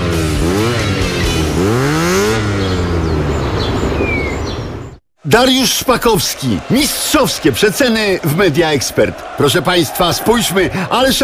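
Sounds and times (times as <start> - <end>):
motorcycle engine revving and idling: 0.0 - 5.0
faint bird chirps: 2.6 - 5.0
speech: 5.3 - 11.2.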